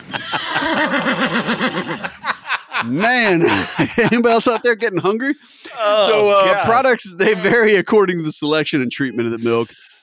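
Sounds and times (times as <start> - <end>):
laughter: 0.0 - 8.1, 9.0 - 9.7
speech: 2.8 - 9.9
horse neighing: 5.7 - 6.8.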